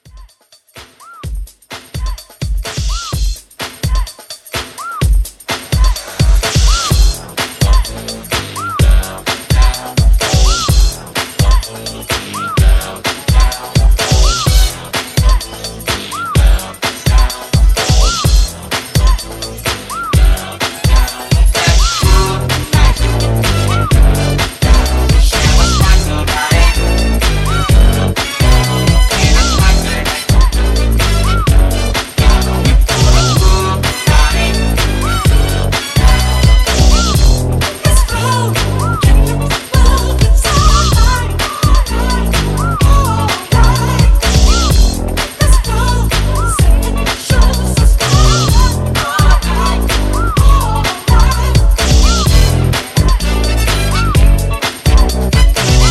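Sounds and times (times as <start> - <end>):
clean mashup drums: 0.0 - 55.8.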